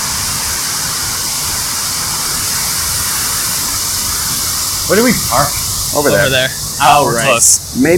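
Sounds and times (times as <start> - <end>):
waterfall roaring: 0.0 - 7.9
speech: 4.9 - 7.9.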